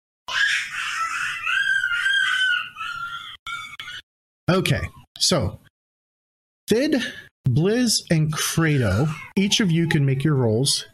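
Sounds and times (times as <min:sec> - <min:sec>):
young child screeching: 0:00.3 - 0:04.0
speech: 0:04.5 - 0:05.7, 0:06.7 - 0:10.9.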